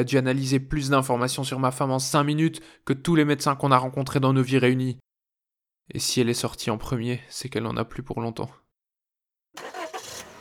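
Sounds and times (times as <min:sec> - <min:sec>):
speech: 0:00.0 - 0:05.0, 0:05.9 - 0:08.6
police car engine starting and idling: 0:09.6 - 0:10.3.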